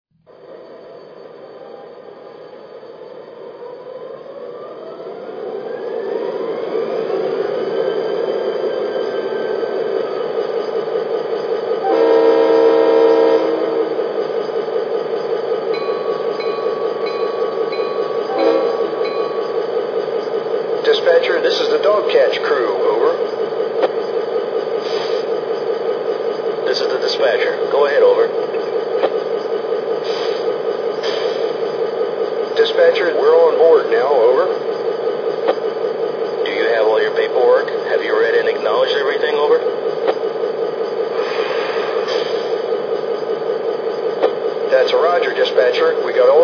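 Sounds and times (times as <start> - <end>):
GP38-2 locomotive: 0.1 - 46.4.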